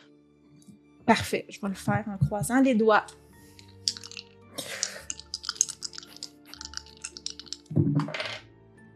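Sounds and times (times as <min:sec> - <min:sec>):
speech: 0:01.1 - 0:03.2
dice clattering and rolling across a hard tabletop: 0:05.0 - 0:08.4.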